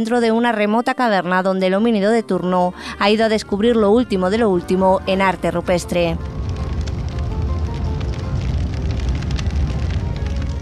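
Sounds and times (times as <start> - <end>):
speech: 0.0 - 6.4
crackling campfire: 2.8 - 10.6.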